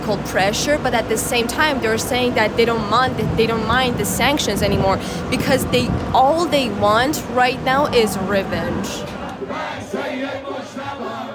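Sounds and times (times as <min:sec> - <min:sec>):
speech: 0:00.1 - 0:09.1
crowd of mourners in Iran chanting: 0:07.6 - 0:11.3.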